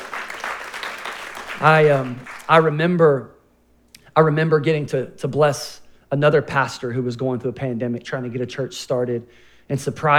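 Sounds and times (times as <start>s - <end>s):
loud whooping cheers: 0.0s - 2.5s
church audience clapping: 0.0s - 2.7s
speech: 1.6s - 3.4s, 4.2s - 10.1s.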